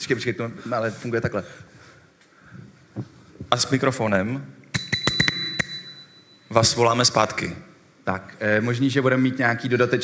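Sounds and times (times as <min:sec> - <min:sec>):
speech: 0:00.0 - 0:01.8, 0:03.0 - 0:04.6, 0:06.5 - 0:10.0
bicycle bell ringing: 0:04.8 - 0:06.5.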